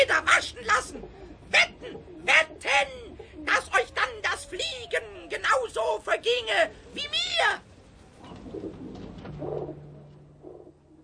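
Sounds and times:
city pigeons cooing: 0:00.0 - 0:07.0, 0:08.2 - 0:11.0
faint hum: 0:00.0 - 0:11.0.

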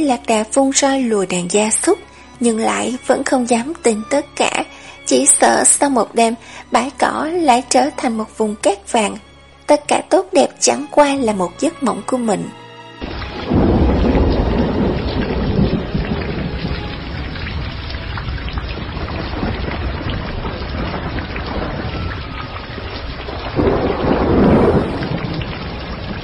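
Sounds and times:
speech: 0:00.0 - 0:13.1
heavy rain in a thunderstorm: 0:00.1 - 0:07.0, 0:13.0 - 0:26.2
deep rumbles of thunder: 0:13.0 - 0:26.2.

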